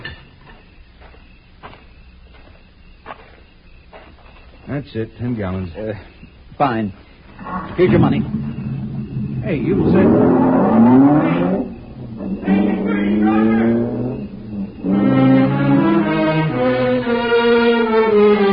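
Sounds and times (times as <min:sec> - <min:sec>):
speech: 0:04.7 - 0:08.6, 0:09.4 - 0:10.4
car engine revving and accelerating through gears as it pulls away: 0:07.4 - 0:18.4.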